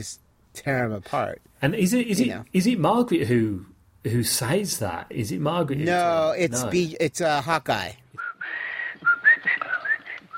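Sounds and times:
speech: 0.0s - 8.0s
man whistling a short wandering tune: 8.2s - 10.3s.

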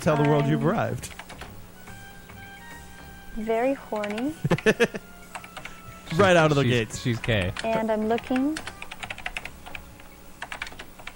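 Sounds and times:
speech: 0.0s - 1.2s, 3.4s - 5.1s, 6.1s - 8.7s
two-finger typing on an old clicky computer keyboard: 4.0s - 4.3s, 7.6s - 9.8s, 10.4s - 11.1s
laughter: 4.4s - 5.1s.

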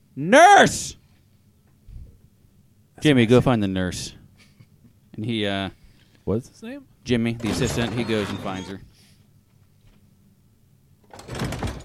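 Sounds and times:
speech: 0.2s - 1.0s, 3.0s - 4.2s, 5.2s - 8.9s
door opening sound effect with rushing slide: 7.4s - 8.8s.

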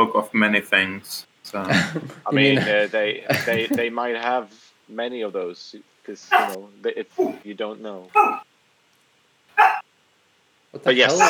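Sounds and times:
speech: 0.0s - 8.5s, 10.7s - 11.2s
dog barking: 6.3s - 6.6s, 7.2s - 7.4s, 8.2s - 8.4s, 9.6s - 9.8s.

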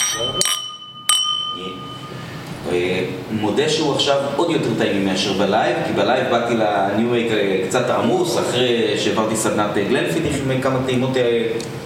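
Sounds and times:
drinking glasses clinking in a toast during a whisky tasting: 0.0s - 2.4s
speech: 0.1s - 0.6s, 2.7s - 11.8s.

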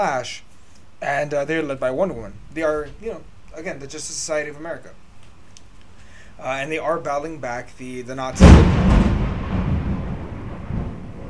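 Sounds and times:
speech: 0.0s - 5.0s, 6.4s - 9.3s
thunder rumbling from a storm: 8.4s - 11.2s.

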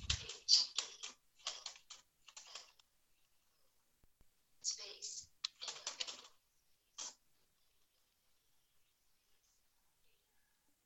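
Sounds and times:
rapid typing on a QWERTY keyboard: 0.0s - 2.9s, 4.8s - 7.2s.

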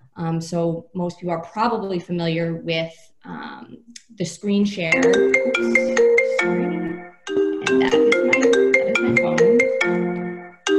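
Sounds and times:
speech: 0.2s - 8.2s
phone ringtone with a bright melodic electronic tune: 4.9s - 10.7s.

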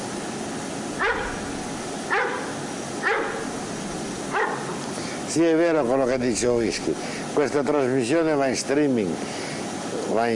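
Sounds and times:
steady hiss: 0.0s - 10.3s
dogs barking: 1.0s - 4.9s
speech: 5.3s - 9.4s, 10.1s - 10.3s.

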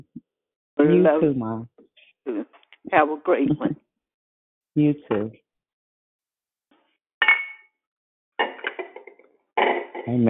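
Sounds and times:
speech: 0.8s - 1.7s, 2.3s - 3.8s, 4.8s - 5.4s, 9.6s - 10.2s
dishes and pots clattering as they're put away: 7.2s - 7.7s, 8.4s - 10.1s.

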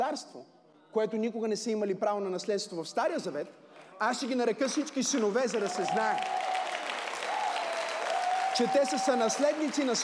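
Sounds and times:
speech: 0.1s - 6.6s, 8.6s - 10.0s
audience applauding at a sermon: 4.6s - 10.0s.

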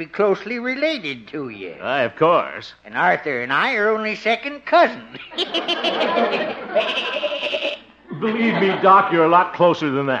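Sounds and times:
speech: 0.0s - 7.6s, 8.2s - 10.1s
laughter: 5.0s - 9.5s
goat bleating: 6.6s - 7.9s.

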